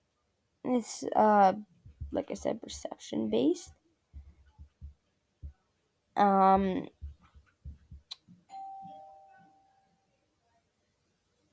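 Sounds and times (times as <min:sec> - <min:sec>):
soft steady tone: 0:00.0 - 0:11.5
speech: 0:00.6 - 0:03.8, 0:06.2 - 0:07.0
low thumps: 0:01.8 - 0:02.6, 0:04.1 - 0:05.6, 0:06.4 - 0:08.2
loud electronic doorbell chime: 0:08.5 - 0:10.0.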